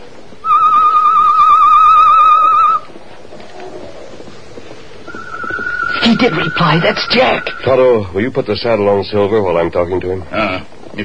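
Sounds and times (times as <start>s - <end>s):
loud warbling whistle imitating a bird call as a signal: 0.4s - 2.9s, 5.0s - 8.1s
speech: 6.2s - 11.0s.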